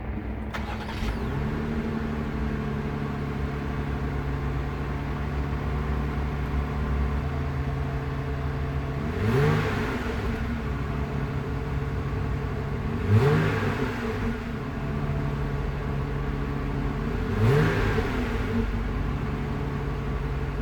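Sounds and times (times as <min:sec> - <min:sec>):
Jeep Wrangler: 0:00.0 - 0:20.6.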